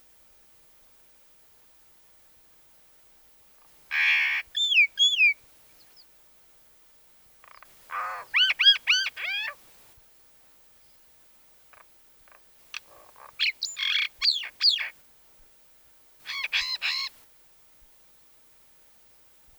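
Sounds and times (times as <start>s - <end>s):
common myna calling: 3.9s - 5.4s, 7.4s - 9.7s, 11.7s - 15.0s, 16.3s - 17.2s.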